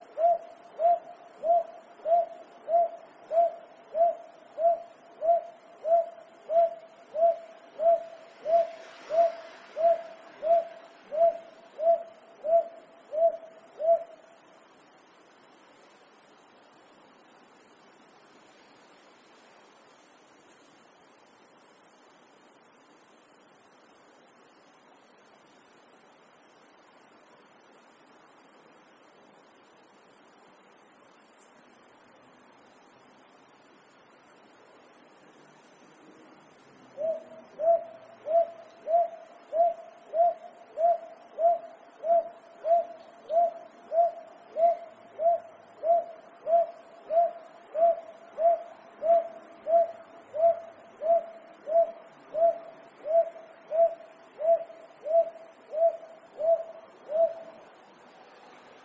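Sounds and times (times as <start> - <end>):
brown hawk owl calling: 0.1 - 14.2, 37.0 - 57.6.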